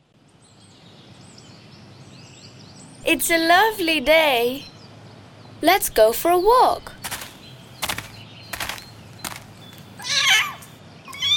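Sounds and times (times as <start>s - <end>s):
speech: 3.0s - 4.7s, 5.6s - 7.0s
sharp clicks or taps: 7.0s - 9.8s
high-pitched kitten meowing: 10.0s - 11.3s.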